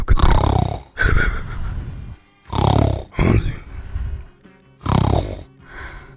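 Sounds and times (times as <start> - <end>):
cat snoring on a sofa: 0.1 - 1.0, 2.5 - 3.3, 4.8 - 5.6.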